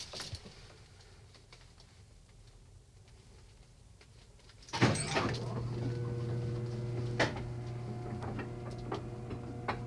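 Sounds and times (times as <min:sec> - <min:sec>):
elevator: 0:04.7 - 0:09.8.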